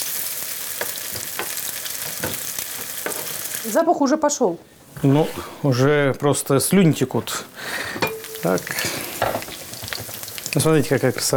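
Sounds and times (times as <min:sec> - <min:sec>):
food sizzling while frying in a pan: 0:00.0 - 0:04.1, 0:06.5 - 0:11.3
speech: 0:03.6 - 0:09.4, 0:10.6 - 0:11.3.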